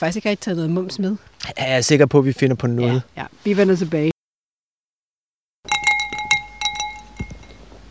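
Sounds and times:
speech: 0.0s - 4.1s
drinking glasses clinking in a toast: 5.7s - 7.8s.

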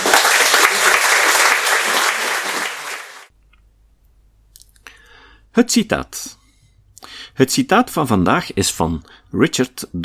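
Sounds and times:
audience applause: 0.0s - 3.3s
speech: 5.6s - 6.4s, 7.4s - 10.0s.

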